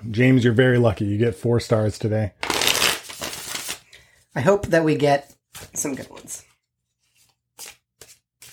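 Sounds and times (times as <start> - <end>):
speech: 0.1 - 2.6, 4.4 - 6.5
tarot deck being shuffled: 2.4 - 3.8, 7.1 - 8.5.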